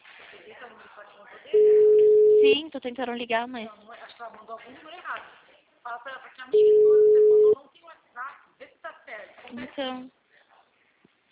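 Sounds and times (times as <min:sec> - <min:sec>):
speech: 0:00.3 - 0:07.2, 0:09.5 - 0:10.2
telephone ringback tone, call unanswered: 0:01.6 - 0:02.6, 0:06.6 - 0:07.6.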